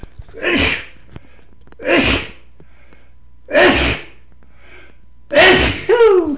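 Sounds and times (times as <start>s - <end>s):
person sneezing: 0.3s - 0.9s, 1.8s - 2.4s, 3.5s - 4.2s, 5.3s - 6.3s.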